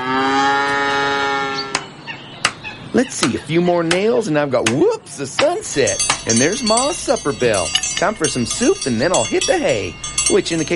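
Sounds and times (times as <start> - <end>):
cow mooing as cows are let out of a barn in the morning: 0.0 - 1.8
speech: 3.0 - 10.7.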